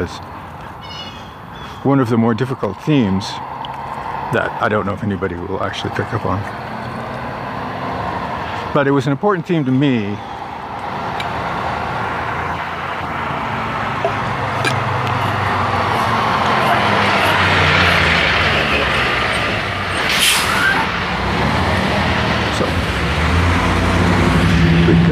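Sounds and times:
speech: 0:00.0 - 0:00.4, 0:01.8 - 0:03.5, 0:04.3 - 0:07.0, 0:08.7 - 0:10.3
heavy truck carrying equipment rumbling past: 0:00.0 - 0:25.1
air brake hiss: 0:20.1 - 0:20.8.

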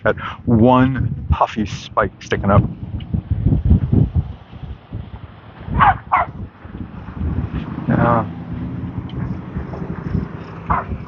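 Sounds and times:
speech: 0:00.0 - 0:02.8
outdoor rumble of cars going by: 0:01.6 - 0:11.0
small corgi collie mix dog barking: 0:05.8 - 0:06.4, 0:10.7 - 0:11.0.

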